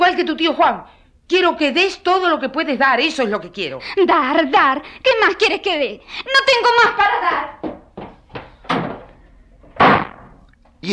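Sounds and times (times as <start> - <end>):
speech: 0.2 - 7.6
wooden door slammed shut during a family argument: 8.6 - 9.1, 9.7 - 10.4.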